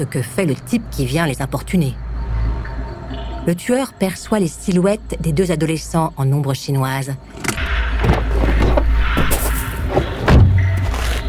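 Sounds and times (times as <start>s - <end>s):
speech: 0.0s - 2.0s, 3.4s - 8.2s
car engine rumbling while pulling in to park: 7.3s - 11.1s.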